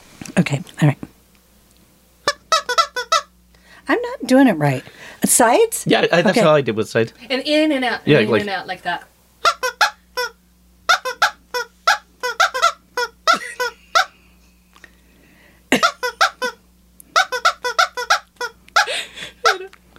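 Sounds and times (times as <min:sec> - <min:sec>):
speech: 0:00.4 - 0:01.1, 0:03.9 - 0:09.1
squeaky toy being squeezed: 0:02.3 - 0:03.3, 0:09.4 - 0:14.1, 0:15.8 - 0:16.6, 0:17.2 - 0:19.6.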